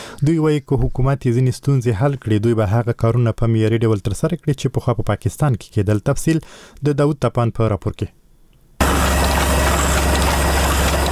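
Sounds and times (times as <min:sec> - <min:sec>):
speech: 0:00.2 - 0:08.2
printing press running with paper for a small book in Afghanistan: 0:08.8 - 0:11.0.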